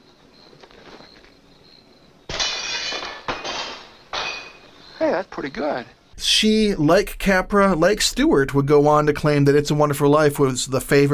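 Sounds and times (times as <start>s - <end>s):
window glass shattering: 2.3s - 4.8s
glass shards scattering: 2.3s - 4.9s
speech: 5.1s - 11.1s.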